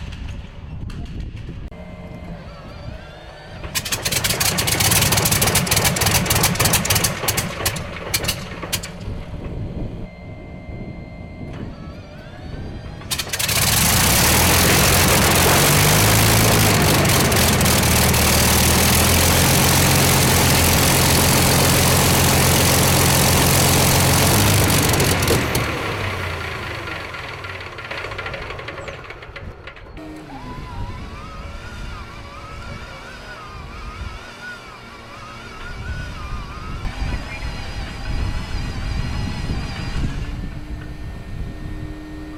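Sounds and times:
overhauled vintage airplane engine cranking, sputtering and running: 0.0s - 42.3s.

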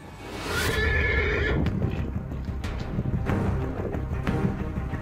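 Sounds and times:
draft horse neighing: 0.5s - 1.7s
draft horse hooves clip-clopping: 1.4s - 4.9s.

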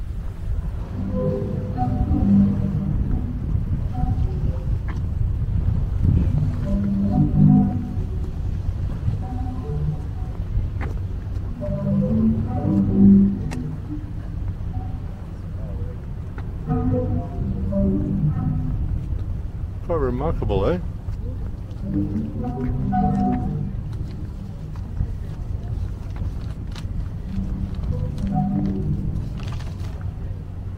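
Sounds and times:
sea organ tones from waves pushing air through pipes: 0.0s - 26.1s, 27.0s - 30.7s
wind: 0.0s - 30.7s.

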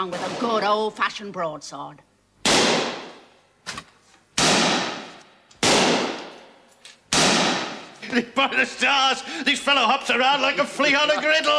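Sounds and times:
speech: 0.0s - 2.1s, 8.1s - 11.5s
gunshots in a great hall in an audio drama: 2.4s - 3.3s, 4.4s - 6.5s, 7.1s - 7.9s.

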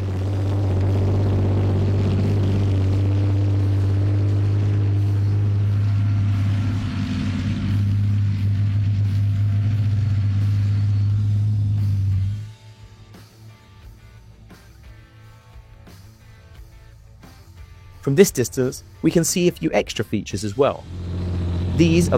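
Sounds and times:
Challenger 2 tank V12 diesel engine idling: 0.0s - 12.4s, 20.8s - 22.1s
speech: 18.1s - 21.0s, 21.8s - 22.1s.

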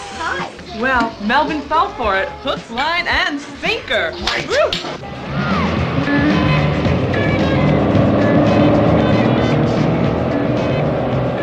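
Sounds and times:
speech: 0.8s - 5.2s
road noise: 5.0s - 11.4s
truck rig hauling chemical waste with engine rumbling: 5.0s - 11.4s.

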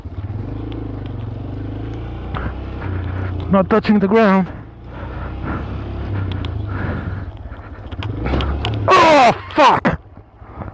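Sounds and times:
vehicle rumbling: 0.0s - 10.7s
vehicle underside hitting a rock with scraping clattering thuds: 2.2s - 8.9s
speech: 3.5s - 4.6s
man crying out in alarm: 8.8s - 10.0s.

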